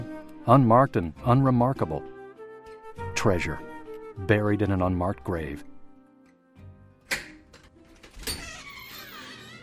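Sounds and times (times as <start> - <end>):
speech: 0.2 - 2.1, 3.2 - 5.7
heavy black metal door latch clunk: 7.1 - 8.6
heavy black metal door scraping open as it swings: 8.0 - 9.6.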